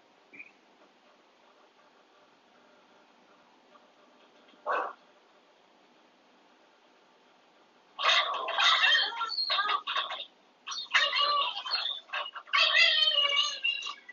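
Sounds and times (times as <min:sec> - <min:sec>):
dogs barking: 0:04.6 - 0:05.0, 0:08.0 - 0:14.1.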